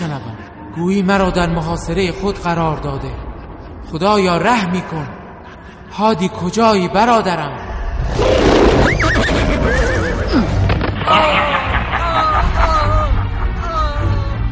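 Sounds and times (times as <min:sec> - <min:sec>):
speech: 0:00.2 - 0:03.2, 0:03.9 - 0:05.2, 0:05.9 - 0:11.7
horse neighing while being attacked: 0:08.2 - 0:10.7
laughter: 0:11.0 - 0:14.4.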